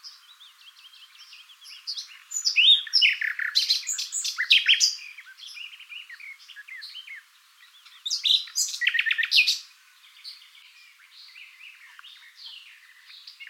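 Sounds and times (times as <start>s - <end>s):
Common nightingale singing (Luscinia megarhynchos): 0.0s - 13.4s.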